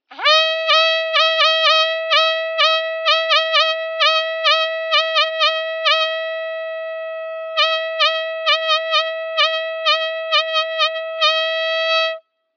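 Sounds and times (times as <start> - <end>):
hunting horn: 0.1 - 12.3.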